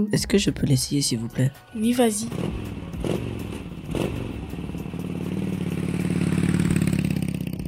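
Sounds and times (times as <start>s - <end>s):
speech: 0.0s - 3.3s
motorcycle engine revving as it rides off: 2.2s - 7.6s.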